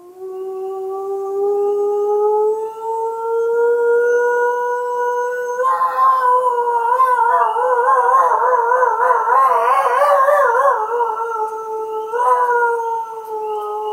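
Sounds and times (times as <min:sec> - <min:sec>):
lone wolf howling: 0:00.0 - 0:13.9
wolf pack howling in chorus: 0:03.3 - 0:13.9
young wolves shouting and roaring: 0:05.4 - 0:13.9.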